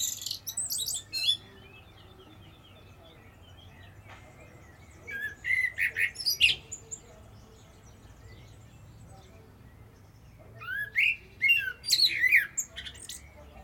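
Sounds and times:
common blackbird Turdus merula singing: 0:00.0 - 0:13.6.

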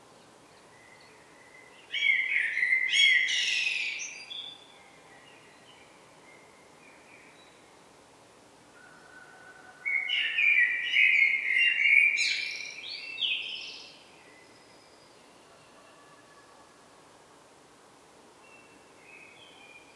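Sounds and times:
common blackbird singing with high twittering notes: 0:01.9 - 0:04.6, 0:09.9 - 0:14.0.

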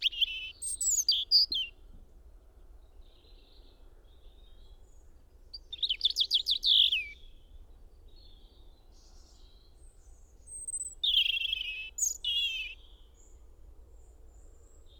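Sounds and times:
European robin song: 0:00.0 - 0:01.8, 0:05.5 - 0:07.3, 0:10.5 - 0:13.0.

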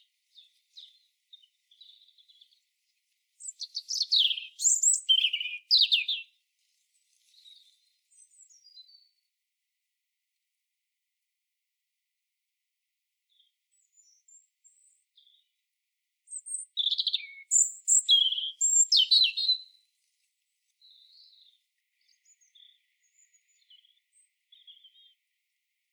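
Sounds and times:
European robin Erithacus rubecula singing: 0:00.0 - 0:09.2, 0:13.3 - 0:15.5, 0:16.3 - 0:19.8, 0:20.8 - 0:25.3.

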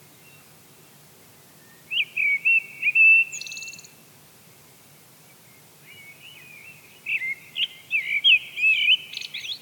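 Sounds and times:
Eurasian blackbird Turdus merula singing: 0:01.6 - 0:04.0, 0:05.8 - 0:09.6.

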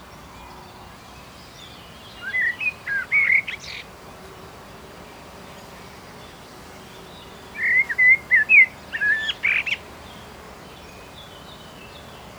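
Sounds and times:
common blackbird song, Turdus merula: 0:01.1 - 0:03.9, 0:07.0 - 0:12.2.

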